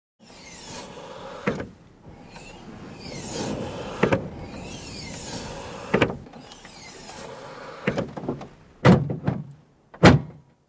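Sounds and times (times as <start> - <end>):
BMW hydraulic hood piston hiss: 0.2 - 7.9
BMW hydraulic car hood opening and closing: 1.3 - 10.5.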